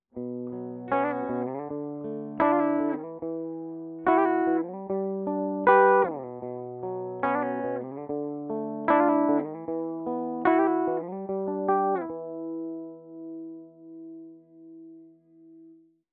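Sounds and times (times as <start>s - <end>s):
clean bridge guitar arpeggio: 0.1s - 15.9s.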